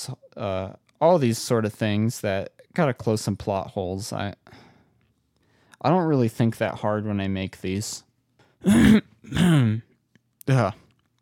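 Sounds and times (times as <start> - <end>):
speech: 0.0 - 4.6, 5.8 - 9.9, 10.5 - 10.8
throaty coughing: 8.6 - 9.9.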